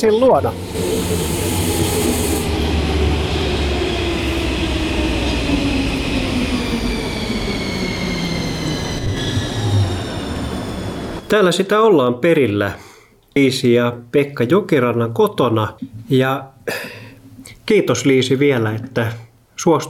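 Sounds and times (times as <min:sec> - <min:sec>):
speech: 0:00.0 - 0:01.6, 0:11.3 - 0:17.0, 0:17.7 - 0:19.8
metro train motor whine: 0:00.0 - 0:11.3
metro train rumbling: 0:00.0 - 0:11.3
faint metro train wheel squeal: 0:06.8 - 0:11.3.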